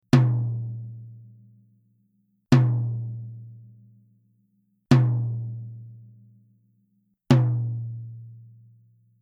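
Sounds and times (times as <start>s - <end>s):
medium tom drum: 0.0s - 1.5s, 2.5s - 3.9s, 4.9s - 6.2s, 7.3s - 8.6s.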